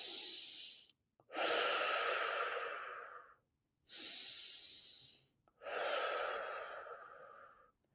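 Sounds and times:
exaggerated deep belly breathing: 0:00.0 - 0:07.8.

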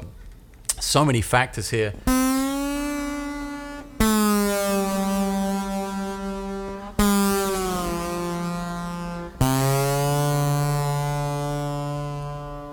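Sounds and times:
speech: 0:00.9 - 0:02.2
distorted slide guitar playing sustained notes: 0:02.1 - 0:12.7.

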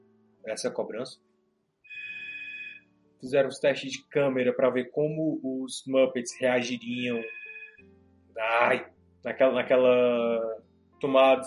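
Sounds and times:
speech: 0:00.4 - 0:01.3, 0:03.2 - 0:07.4, 0:08.4 - 0:11.4
telephone ringing: 0:01.9 - 0:02.8, 0:06.9 - 0:07.8.

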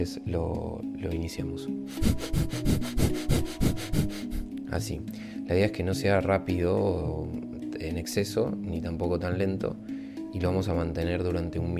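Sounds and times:
speech: 0:00.0 - 0:11.7
rapid short nasal breathing in a breath-of-fire exercise: 0:01.9 - 0:04.5.

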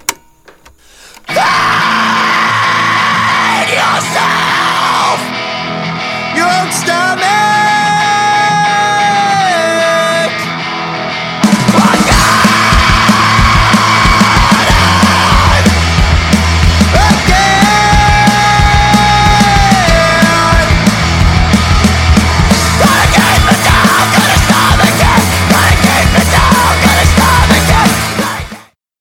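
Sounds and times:
distorted guitars in an emo rock song: 0:00.0 - 0:29.0
harsh screamed vocals in an emo rock song: 0:01.3 - 0:10.5, 0:11.3 - 0:28.8
pounding drums in an emo rock song: 0:11.4 - 0:28.6.

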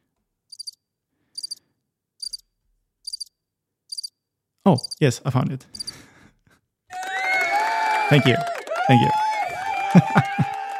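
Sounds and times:
crickets chirping as a waiting sound effect: 0:00.5 - 0:00.8, 0:01.4 - 0:01.6, 0:02.2 - 0:02.4, 0:03.1 - 0:03.3, 0:03.9 - 0:04.2, 0:04.8 - 0:05.0, 0:05.8 - 0:06.0
speech: 0:04.7 - 0:05.8, 0:08.1 - 0:09.2, 0:09.9 - 0:10.5
laughter: 0:06.9 - 0:10.7.

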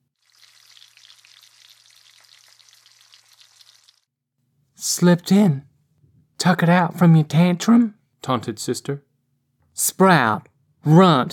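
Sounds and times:
breakfast sizzling in a pan on a stovetop: 0:00.2 - 0:04.1
speech: 0:05.0 - 0:05.7, 0:06.4 - 0:09.1, 0:09.8 - 0:11.3.

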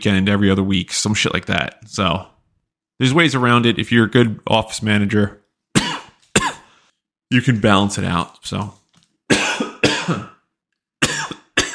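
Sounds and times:
speech: 0:00.0 - 0:02.4, 0:03.0 - 0:05.4, 0:07.3 - 0:09.4, 0:10.1 - 0:10.3
harsh coughing fit from an irritated throat: 0:05.7 - 0:06.8, 0:09.3 - 0:11.7.

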